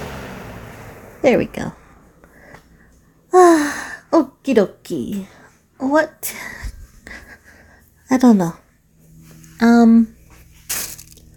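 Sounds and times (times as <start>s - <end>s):
speech: 1.2s - 1.8s, 4.4s - 6.5s, 8.1s - 8.6s, 9.6s - 10.2s
plastic bag crinkling on the floor: 10.6s - 11.3s.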